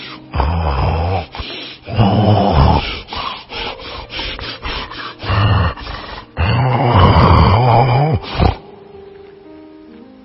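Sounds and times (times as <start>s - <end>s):
voice imitating a sleeping wolf snoring: 0.3s - 3.2s, 5.2s - 8.6s.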